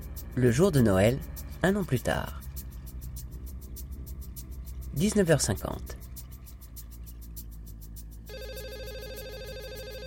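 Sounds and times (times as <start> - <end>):
speech: 0.4 - 2.4, 5.0 - 6.0
hotel room telephone ringing with bell-like trills and electronic warble: 8.3 - 10.0.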